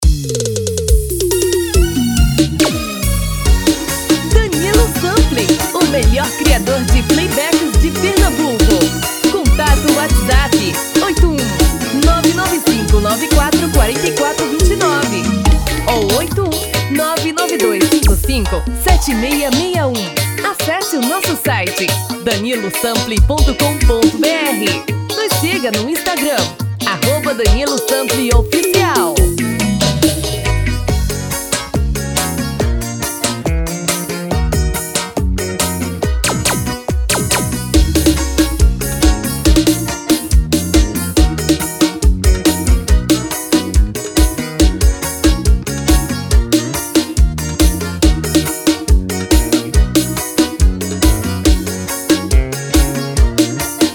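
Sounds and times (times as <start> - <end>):
piseiro music: 0.0 - 53.9.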